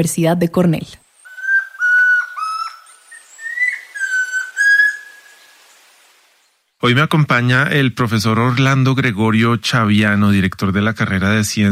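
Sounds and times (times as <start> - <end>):
speech: 0.0 - 1.0, 6.8 - 11.7
chestnut-crowned antpitta trill: 1.2 - 5.3.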